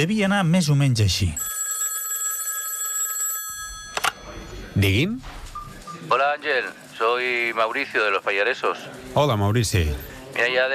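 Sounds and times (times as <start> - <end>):
speech: 0.0 - 1.6, 4.8 - 5.4, 6.0 - 10.7
telephone ringing with a bright electronic trill: 1.4 - 5.0.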